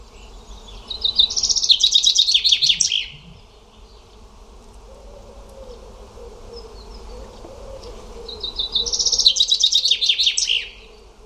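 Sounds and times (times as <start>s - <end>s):
bird song of quick repeated high chirping notes: 0.6s - 3.5s, 8.4s - 10.8s.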